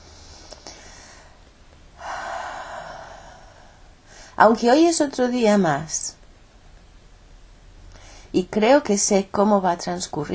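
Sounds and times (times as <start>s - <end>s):
deep breath during a guided tapping exercise: 0.0s - 4.4s, 7.9s - 8.3s
speech: 4.4s - 6.2s, 8.4s - 10.3s.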